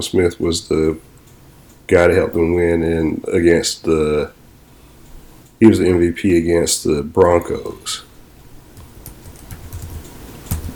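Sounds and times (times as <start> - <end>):
speech: 0.0 - 1.1, 1.9 - 4.4, 5.6 - 8.1
typing on a computer keyboard: 8.8 - 10.7.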